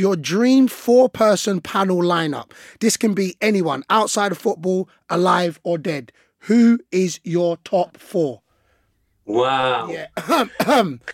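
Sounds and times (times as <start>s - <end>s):
speech: 0.0s - 8.4s, 9.3s - 11.1s
loud throat clearing: 10.1s - 11.1s.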